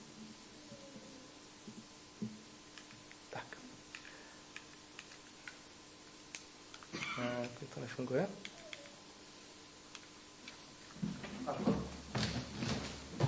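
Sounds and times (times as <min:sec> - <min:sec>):
quiet room noise: 0:00.0 - 0:13.2
computer mouse clicking: 0:03.9 - 0:05.6, 0:08.4 - 0:09.0
speech: 0:07.2 - 0:08.5.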